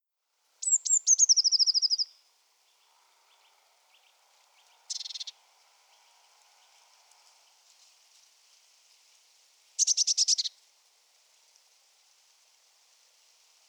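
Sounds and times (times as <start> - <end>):
Eurasian blue tit Cyanistes caeruleus calls and churrs: 0.6 - 2.1, 4.9 - 5.4.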